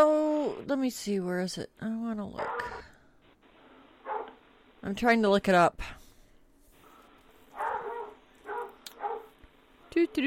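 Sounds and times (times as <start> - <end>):
speech: 0.0 - 2.9, 4.8 - 6.0, 10.0 - 10.2
dog barking in short moderately loud yaps: 2.4 - 2.9, 4.0 - 4.4, 6.8 - 10.0.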